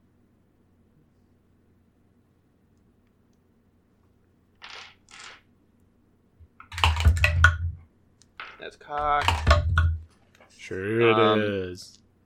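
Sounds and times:
polyhedral eight-sided dice rolling on a tabletop during a Dungeons & Dragons game: 0:04.6 - 0:05.5, 0:06.6 - 0:10.0
speech: 0:08.7 - 0:09.6, 0:10.7 - 0:12.0.

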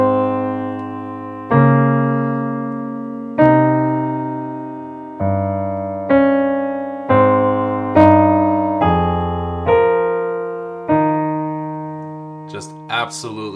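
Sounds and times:
music melody with bass line as counter melody: 0:00.0 - 0:13.5
speech: 0:13.1 - 0:13.5.

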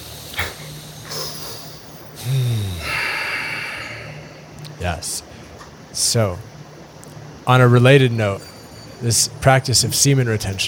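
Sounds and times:
people taking a deep breath together: 0:01.0 - 0:04.6
speech: 0:02.2 - 0:02.6, 0:04.8 - 0:05.3, 0:06.0 - 0:06.5, 0:07.5 - 0:10.6.

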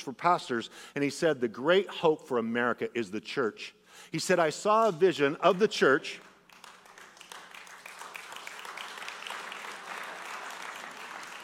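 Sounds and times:
speech: 0:00.0 - 0:06.3
audience applauding politely: 0:06.2 - 0:11.4.

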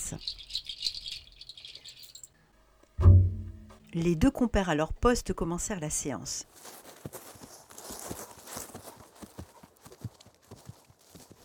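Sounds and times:
speech: 0:00.1 - 0:00.4, 0:03.9 - 0:06.5
horse hooves clip-clopping while walking: 0:07.0 - 0:11.4.

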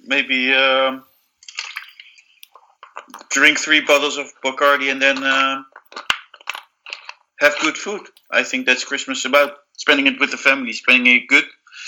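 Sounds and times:
speech: 0:00.1 - 0:01.1, 0:03.1 - 0:05.7, 0:07.4 - 0:11.8
liquid being poured: 0:01.0 - 0:08.6.

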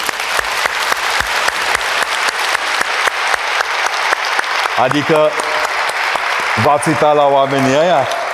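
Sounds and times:
audience applause: 0:00.0 - 0:08.3
speech: 0:04.8 - 0:05.6, 0:06.6 - 0:08.2.

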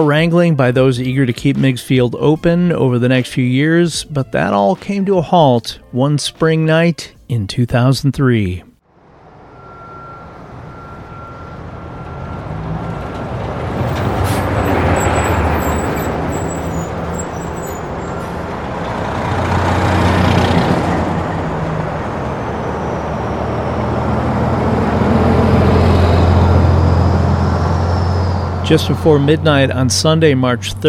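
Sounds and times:
speech: 0:00.0 - 0:08.7, 0:28.7 - 0:30.8
heavy trucks transporting construction equipment rumbling: 0:08.9 - 0:30.8.

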